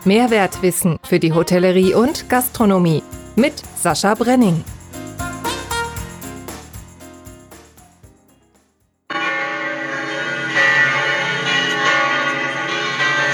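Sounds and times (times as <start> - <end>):
speech: 0.0 - 4.8
church bells ringing: 9.1 - 13.3.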